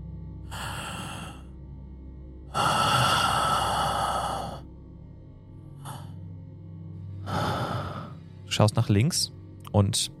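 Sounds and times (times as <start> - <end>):
heavy ragged breathing: 0.4 - 1.8, 2.4 - 4.8, 5.7 - 8.5
speech: 8.5 - 10.1.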